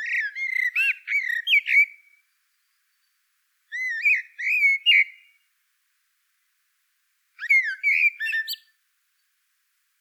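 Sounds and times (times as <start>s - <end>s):
common blackbird Turdus merula song: 0.0s - 5.4s, 7.4s - 9.3s.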